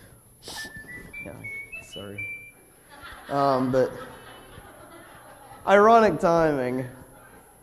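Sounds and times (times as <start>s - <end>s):
phone whistle text alert in a church: 0.4s - 2.7s
speech: 1.2s - 2.4s, 3.3s - 4.2s, 5.6s - 7.0s
laughter: 2.8s - 6.1s.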